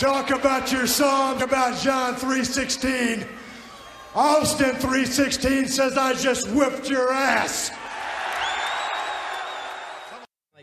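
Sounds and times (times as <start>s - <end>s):
speech: 0.0s - 3.5s, 4.1s - 7.9s
arena crowd whistling: 0.0s - 4.9s, 7.8s - 10.3s
huge arena crowd cheering: 0.0s - 10.3s.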